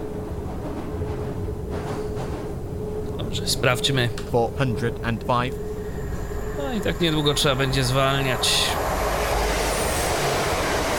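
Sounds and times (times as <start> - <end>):
train passing: 0.0 - 10.9
dense rumbling and rattling of trains: 0.2 - 10.9
speech: 3.3 - 5.7, 6.7 - 8.9.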